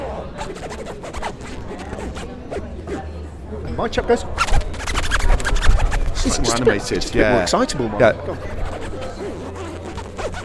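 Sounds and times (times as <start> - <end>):
dense scratchy noise: 0.0 - 10.4
clothing zip being pulled back and forth: 0.4 - 3.0, 4.4 - 6.6, 8.3 - 10.4
speech: 3.8 - 4.6, 6.2 - 8.6.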